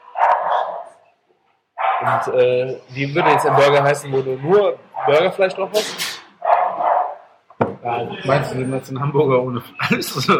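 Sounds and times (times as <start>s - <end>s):
dog barking: 0.0s - 1.0s, 1.8s - 2.4s, 3.2s - 3.9s, 4.9s - 5.4s, 6.4s - 7.4s
speech: 2.0s - 6.0s, 8.0s - 10.3s.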